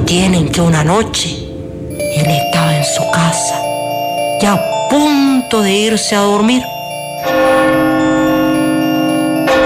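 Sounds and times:
speech: 0:00.1 - 0:01.4, 0:02.2 - 0:03.7, 0:04.4 - 0:07.8
clock striking its last chimes of the day: 0:04.6 - 0:09.6.

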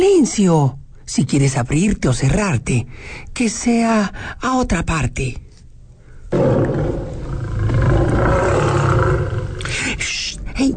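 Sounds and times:
speech: 0:00.0 - 0:05.4, 0:06.3 - 0:06.8, 0:10.0 - 0:10.7
lion roaring: 0:06.3 - 0:10.0.

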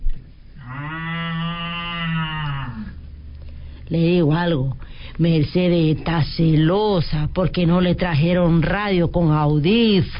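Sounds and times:
cow mooing: 0:00.6 - 0:03.0
speech: 0:03.9 - 0:10.1.

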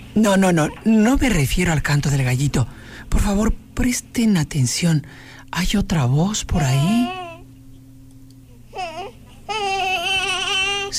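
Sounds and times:
steady hum: 0:00.0 - 0:10.9
speech: 0:00.2 - 0:07.2
baby crying: 0:06.6 - 0:07.4, 0:08.7 - 0:10.9.

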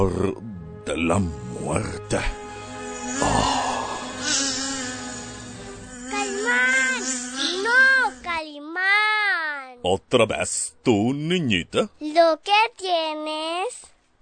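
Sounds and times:
speech: 0:00.0 - 0:02.4, 0:03.2 - 0:03.6, 0:09.9 - 0:13.9
mosquito buzzing: 0:02.4 - 0:08.4.

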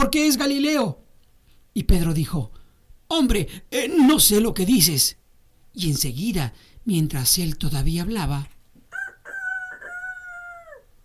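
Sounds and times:
speech: 0:00.0 - 0:01.0, 0:01.8 - 0:05.2, 0:05.8 - 0:08.5
rooster crowing: 0:08.9 - 0:11.0.

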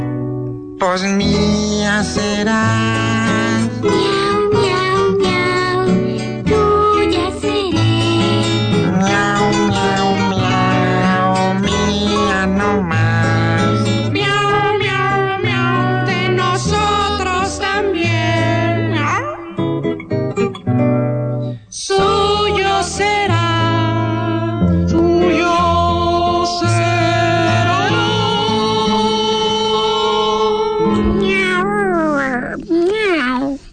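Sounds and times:
bolero-style song: 0:00.0 - 0:20.5, 0:21.2 - 0:32.6
instrumental backing: 0:00.0 - 0:33.7
speech: 0:00.8 - 0:04.2
singer voicing drawn-out cat meows and purring: 0:30.8 - 0:33.7.

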